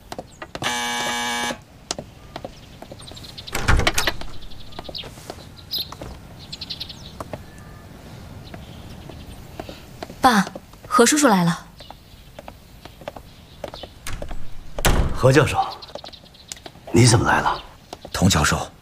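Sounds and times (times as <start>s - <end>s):
electric door buzzer: 0.6s - 1.6s
door pulled open with a rattling thump: 3.5s - 4.8s, 14.0s - 15.5s
speech: 10.3s - 11.6s, 15.2s - 15.7s, 16.9s - 17.6s, 18.2s - 18.7s.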